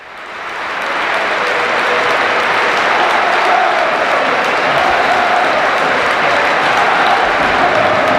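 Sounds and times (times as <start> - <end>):
huge crowd of standing fans applauding in a football stadium: 0.0 - 8.1.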